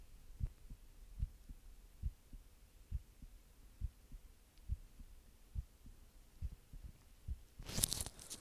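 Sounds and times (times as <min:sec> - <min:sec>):
heartbeat held up to microphone thumping low and muffled: 0:00.3 - 0:07.6
scraping rustle: 0:07.6 - 0:08.4.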